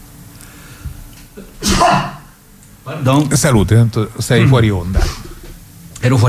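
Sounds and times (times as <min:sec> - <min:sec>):
speech: 0:01.4 - 0:02.1, 0:02.9 - 0:05.2, 0:06.0 - 0:06.2
sneeze: 0:01.4 - 0:02.4.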